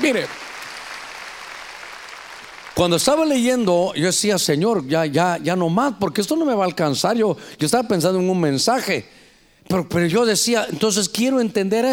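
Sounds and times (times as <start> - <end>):
speech: 0.0 - 0.4, 2.8 - 11.9
audience applauding loudly: 0.0 - 3.7.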